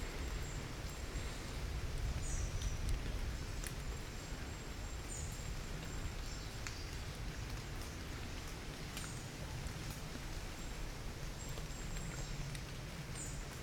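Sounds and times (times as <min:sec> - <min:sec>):
rain pattering on leaves: 0:00.0 - 0:13.6
water drips: 0:00.1 - 0:13.6.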